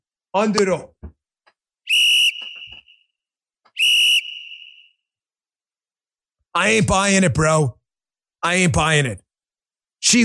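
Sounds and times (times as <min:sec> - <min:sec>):
speech: 0:00.4 - 0:01.2, 0:06.6 - 0:07.8, 0:08.4 - 0:09.2, 0:10.0 - 0:10.2
sharp whistle blasts: 0:01.8 - 0:05.1.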